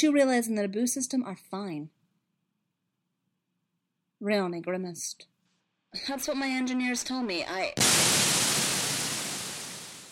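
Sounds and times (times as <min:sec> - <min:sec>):
speech: 0:00.0 - 0:02.0, 0:04.2 - 0:05.3, 0:05.9 - 0:08.0
harsh radio static on a holocom transmission: 0:07.8 - 0:10.0.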